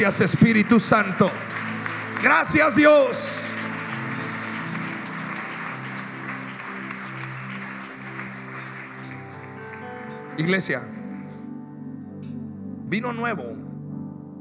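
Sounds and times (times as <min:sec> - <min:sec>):
speech: 0:00.0 - 0:03.4, 0:10.4 - 0:11.0, 0:12.9 - 0:13.6
large church audience applauding: 0:00.0 - 0:10.4
sustained instrumental chords: 0:00.7 - 0:14.3.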